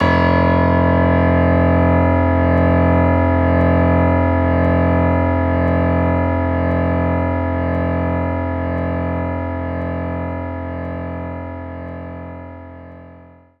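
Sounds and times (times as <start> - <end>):
grand piano note F1: 0.0 - 12.4.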